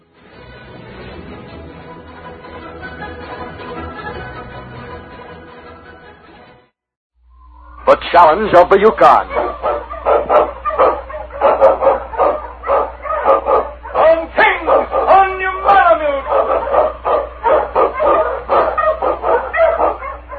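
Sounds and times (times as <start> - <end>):
speech: 7.9 - 9.4
pack of sled dogs barking and yipping excitedly: 8.6 - 20.3.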